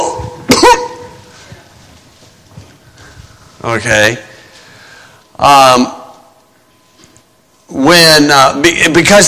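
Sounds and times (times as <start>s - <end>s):
rough throat clearing: 0.0s - 1.0s
quiet room hum with faint low drone: 0.0s - 9.2s
single harsh cough: 0.5s - 1.0s
speech: 3.6s - 4.3s, 5.4s - 6.0s, 7.8s - 9.2s.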